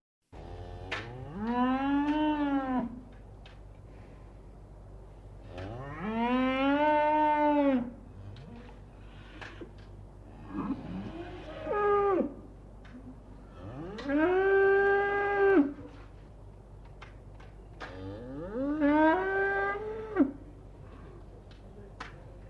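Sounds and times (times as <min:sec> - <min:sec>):
cows: 0:00.4 - 0:03.6, 0:05.4 - 0:16.2, 0:16.9 - 0:22.4.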